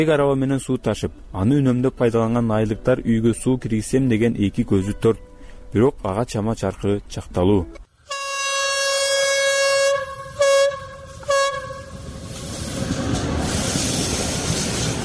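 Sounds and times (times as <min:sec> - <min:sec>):
speech: 0:00.0 - 0:07.8
train horn blasts passing a village: 0:08.0 - 0:12.3
rumble and clatter of moving rail cars: 0:10.2 - 0:15.0.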